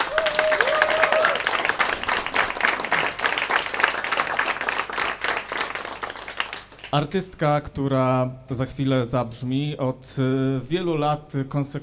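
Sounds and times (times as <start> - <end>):
crowd applauding with dense overlapping hand claps: 0.0 - 7.0
speech: 6.9 - 11.8.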